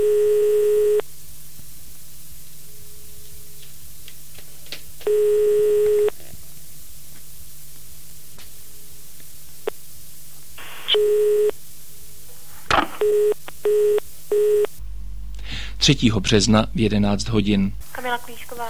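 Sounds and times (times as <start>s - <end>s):
short busy-signal beeps: 0.0s - 1.0s, 5.1s - 6.1s, 10.9s - 11.5s, 13.0s - 14.7s
telephone at a press office ringing unanswered: 0.0s - 1.0s, 5.1s - 6.1s
speech: 15.9s - 18.6s.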